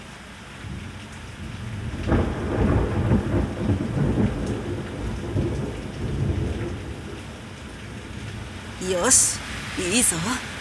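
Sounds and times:
steady rain pouring: 0:00.0 - 0:10.5
deep thunder rumbling overhead: 0:02.1 - 0:07.1
speech: 0:08.9 - 0:10.5.

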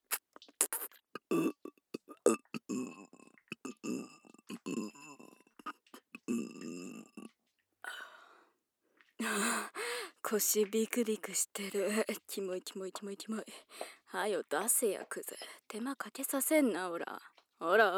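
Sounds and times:
girl burping loudly: 0:01.2 - 0:07.3
speech: 0:10.3 - 0:17.9.

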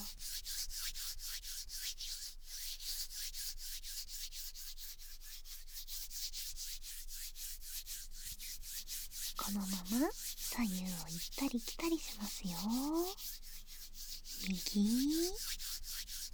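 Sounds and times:
both hands rubbing together close to the ear: 0:08.1 - 0:16.3
speech: 0:09.5 - 0:13.3, 0:14.5 - 0:15.5.

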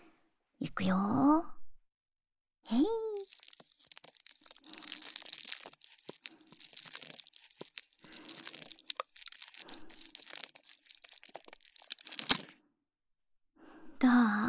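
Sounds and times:
speech: 0:00.6 - 0:01.6, 0:02.7 - 0:03.1
bar of soap being shaved and crushed: 0:03.0 - 0:12.5.

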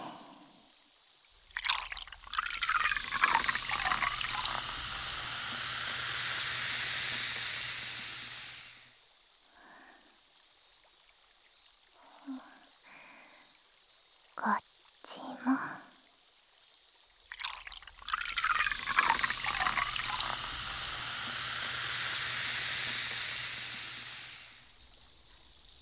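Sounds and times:
liquid being poured: 0:01.4 - 0:08.8, 0:17.3 - 0:25.8
soft voice sounds: 0:14.4 - 0:15.9.

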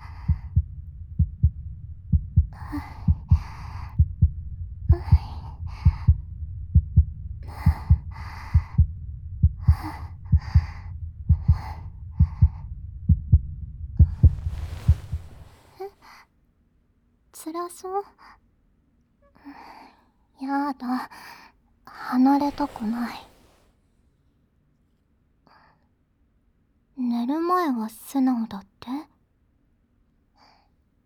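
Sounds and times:
low heartbeat thumping: 0:00.0 - 0:15.8
speech: 0:17.5 - 0:18.3, 0:20.4 - 0:21.4, 0:22.0 - 0:23.3, 0:27.1 - 0:29.1.

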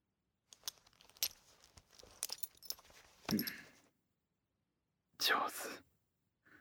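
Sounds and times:
belt buckle being undone: 0:00.5 - 0:03.8
speech: 0:03.3 - 0:03.6, 0:05.3 - 0:05.9.

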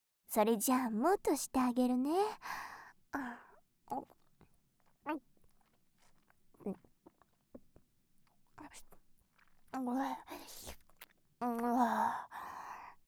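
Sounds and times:
speech: 0:00.3 - 0:04.2, 0:05.0 - 0:05.3, 0:06.6 - 0:06.9, 0:08.6 - 0:08.9, 0:09.7 - 0:10.8, 0:11.4 - 0:12.6
wet chewing and smacking mouth sounds: 0:03.9 - 0:11.8.

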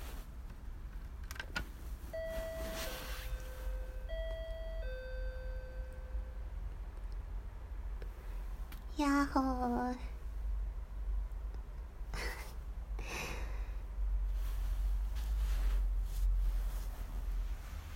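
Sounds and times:
steady outdoor noise: 0:00.0 - 0:17.9
two-tone electronic intercom doorbell chime at a house: 0:02.1 - 0:06.5
speech: 0:09.0 - 0:10.2.

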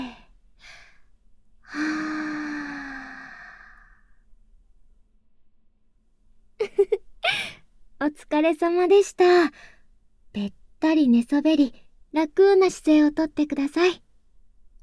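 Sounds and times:
deep inhale during a guided breathing exercise: 0:00.0 - 0:04.2
long voiced exhale during a guided breathing exercise: 0:01.7 - 0:04.1
speech: 0:08.1 - 0:09.7, 0:10.4 - 0:14.0.

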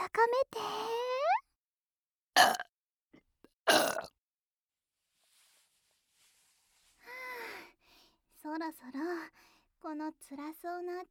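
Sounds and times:
speech: 0:00.1 - 0:01.0, 0:08.6 - 0:11.0
girl burping into the listener's ear: 0:02.4 - 0:02.6, 0:03.7 - 0:04.1.

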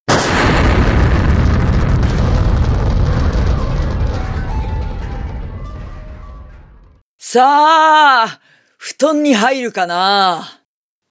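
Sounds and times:
grenade explosion: 0:00.0 - 0:07.0
crackling rumbling roar of grenade explosion: 0:00.1 - 0:07.0
speech: 0:07.3 - 0:10.6.

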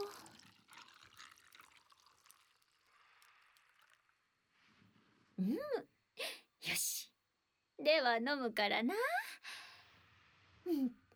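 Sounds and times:
water poured into a vessel at home: 0:00.0 - 0:04.4
speech: 0:05.4 - 0:05.9, 0:07.9 - 0:09.2, 0:10.7 - 0:11.0.

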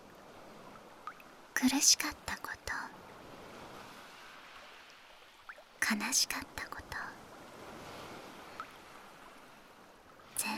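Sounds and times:
ocean waves washing as a broad hiss of surf: 0:00.0 - 0:10.5
speech: 0:01.6 - 0:03.0, 0:05.9 - 0:06.8.

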